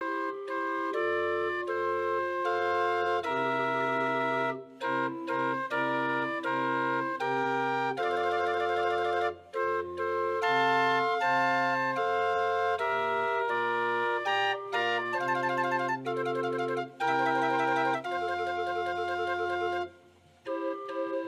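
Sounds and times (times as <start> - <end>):
barrel organ playing a birthday song: 0.0 - 19.9.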